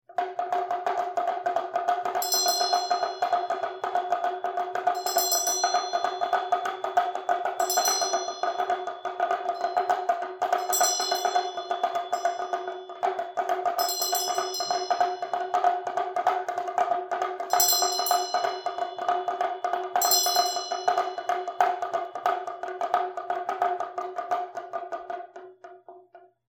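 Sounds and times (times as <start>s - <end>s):
damaru: 0.1s - 26.4s
ghanta bell ringing: 2.2s - 4.1s, 5.0s - 15.4s, 17.5s - 21.6s.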